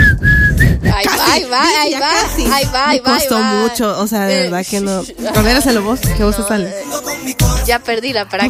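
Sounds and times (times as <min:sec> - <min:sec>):
person whistling: 0:00.0 - 0:01.1
dense noisy background: 0:00.0 - 0:08.4
speech: 0:01.4 - 0:08.4.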